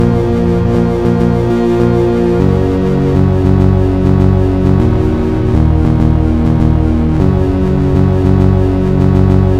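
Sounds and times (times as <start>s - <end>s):
gloomy synth chord loop: 0.0s - 9.5s.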